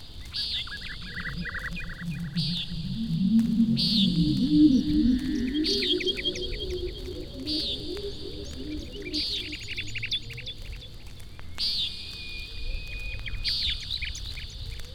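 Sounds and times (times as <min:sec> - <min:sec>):
Common Nighthawk buzzy nasal calls: 0:00.2 - 0:14.5
soft chirps: 0:00.2 - 0:14.7
low warbling murmur: 0:00.3 - 0:11.6.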